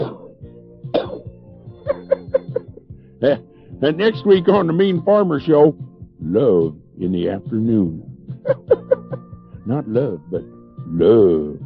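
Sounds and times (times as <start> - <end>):
person coughing: 0.0 - 1.3, 8.5 - 9.1
steady low musical hum: 0.0 - 11.6
laughter: 1.9 - 2.8, 8.4 - 9.2
speech: 3.2 - 8.7, 9.7 - 11.6.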